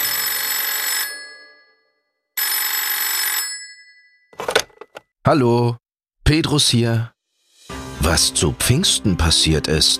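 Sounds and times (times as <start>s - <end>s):
telephone ringing in loud bright bursts: 0.0s - 5.0s
speech: 5.2s - 7.2s, 8.0s - 9.9s.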